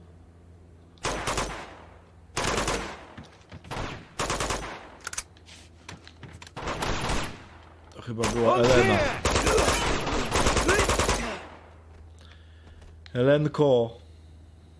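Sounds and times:
video game gunfire: 1.0s - 5.0s, 6.6s - 7.6s, 8.2s - 11.8s
speech: 8.1s - 9.2s, 13.2s - 14.0s.

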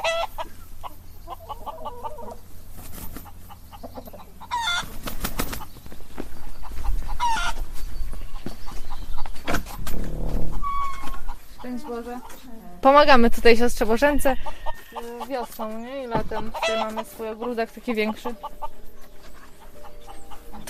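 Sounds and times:
hens clucking and squawking in a chicken coop: 0.0s - 20.6s
speech: 11.9s - 14.6s, 15.4s - 18.6s.

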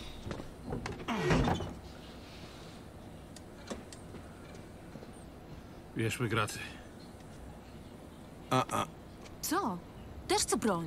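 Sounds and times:
door pushed shut with a scraping slide and thud: 0.3s - 1.8s
speech: 6.0s - 6.8s, 10.4s - 10.8s.

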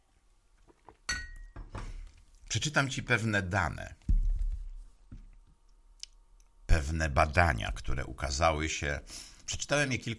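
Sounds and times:
ringing clink of a coffee cup touching down: 1.1s - 1.9s
speech: 2.5s - 4.0s, 6.9s - 10.1s.

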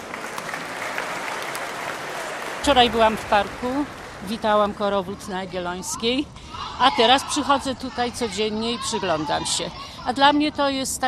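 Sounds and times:
audience applause: 0.0s - 5.6s
speech: 2.6s - 11.0s.

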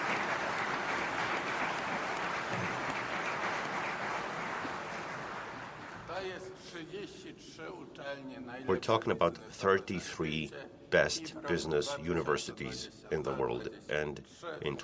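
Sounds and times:
crowd clapping in congratulation: 0.0s - 6.1s
speech: 6.9s - 14.8s.

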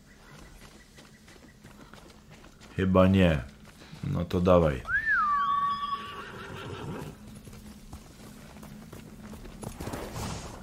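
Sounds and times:
hooves thumping and shuffling in a video game: 0.0s - 10.6s
speech: 2.8s - 4.9s
horse neighing in a video game: 4.9s - 7.2s.

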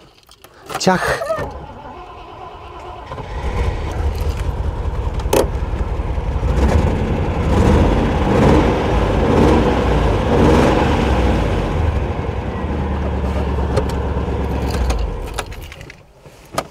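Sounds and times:
speech: 0.8s - 1.6s
Renault Avantime car engine with LPG gas installation starting and idling: 1.0s - 16.1s
keys jingling: 14.4s - 16.0s.

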